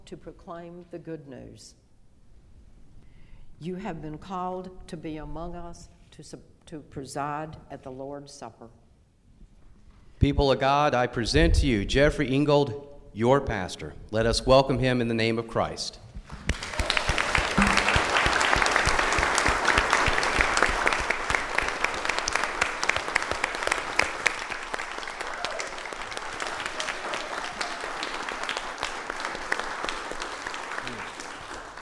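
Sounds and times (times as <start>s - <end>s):
speech: 0.1s - 1.8s, 3.6s - 8.8s, 10.2s - 16.0s
large audience applauding in a reverberant room: 16.3s - 31.8s.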